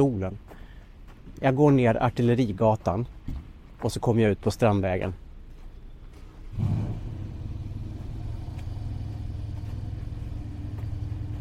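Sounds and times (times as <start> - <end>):
speech: 0.0 - 0.6, 1.4 - 3.2, 3.8 - 5.2, 6.5 - 6.8
big American car engine turning over and catching: 6.5 - 11.3.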